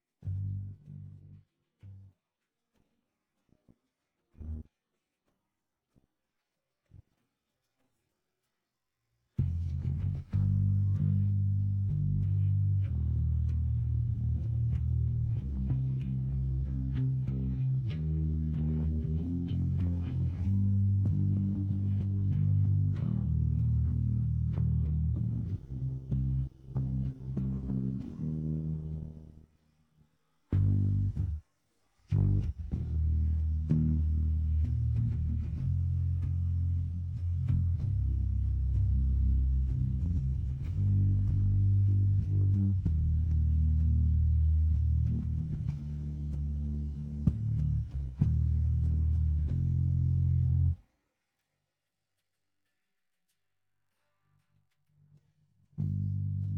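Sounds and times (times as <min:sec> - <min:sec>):
bass in G minor: 0:00.0 - 0:02.2, 0:04.4 - 0:04.7, 0:09.4 - 0:29.5, 0:30.5 - 0:31.4, 0:32.0 - 0:50.9, 0:55.1 - 0:56.5.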